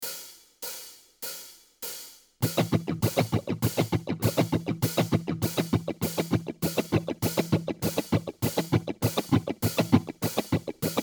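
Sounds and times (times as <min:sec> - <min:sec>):
basic cutting guitar strumming: 0:02.4 - 0:11.0.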